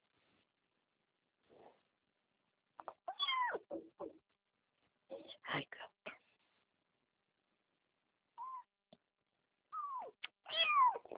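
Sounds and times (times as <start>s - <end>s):
cat meowing: 3.1s - 3.8s, 9.8s - 11.1s.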